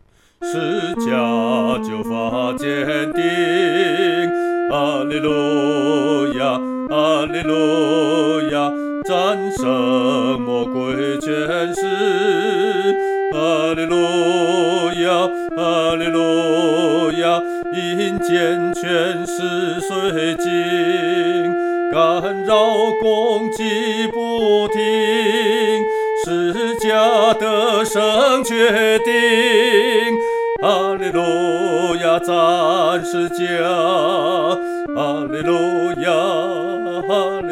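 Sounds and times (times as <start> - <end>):
person singing a song solo: 0.4 - 37.4.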